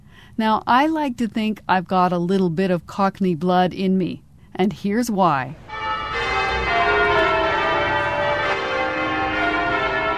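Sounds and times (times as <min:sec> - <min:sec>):
speech: 0:00.4 - 0:05.7
church bells ringing: 0:05.6 - 0:10.1.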